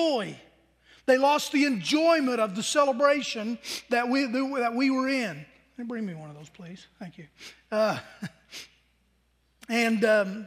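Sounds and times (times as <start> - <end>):
speech: 0.0 - 8.7, 9.7 - 10.4
short breathy sniff through the nose: 7.4 - 7.7, 8.5 - 8.8.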